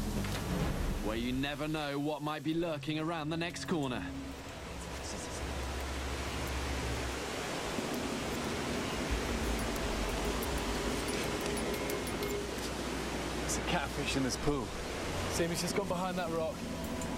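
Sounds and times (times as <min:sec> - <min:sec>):
rushing waterfall on a mountain river: 0:00.0 - 0:17.1
speech: 0:01.0 - 0:04.2, 0:13.7 - 0:16.8.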